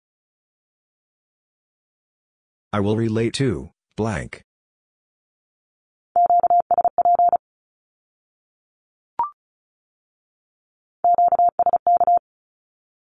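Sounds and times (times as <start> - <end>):
speech: 2.7 - 4.5
Morse code beeps sending Q-codes at 35 words per minute: 6.2 - 7.4, 11.0 - 12.2.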